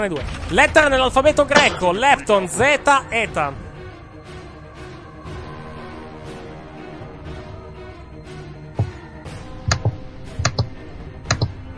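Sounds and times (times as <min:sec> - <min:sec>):
speech: 0:00.0 - 0:03.6
furious typing on a laptop computer keyboard: 0:09.7 - 0:10.7, 0:11.3 - 0:11.5.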